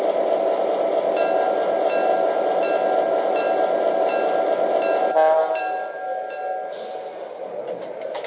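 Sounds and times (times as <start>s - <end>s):
passenger train arriving at station platform: 0.0s - 8.2s
passenger train squealing as it slows: 1.2s - 7.3s.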